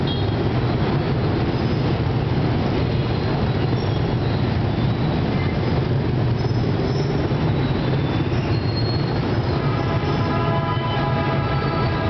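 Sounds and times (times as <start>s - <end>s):
idling and creeping engines in a traffic jam in Saigon: 0.0s - 12.0s
longer stacked horn tone: 9.5s - 12.0s.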